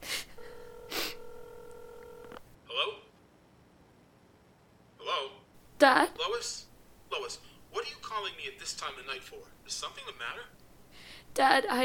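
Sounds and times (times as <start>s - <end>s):
steady electronic ringing tone over a phone line: 0.4s - 2.4s
speech: 5.8s - 7.5s, 8.2s - 10.6s, 11.4s - 11.8s
sharp breathy gasps or rushes of air: 10.9s - 11.3s.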